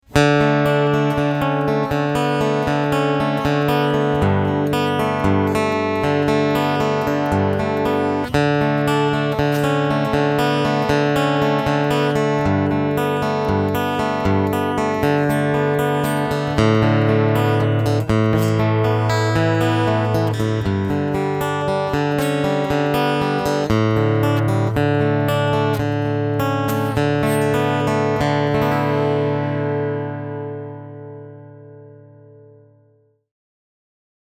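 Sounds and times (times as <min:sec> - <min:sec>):
Epiphone J-45 guitar picking: 0:00.0 - 0:32.8.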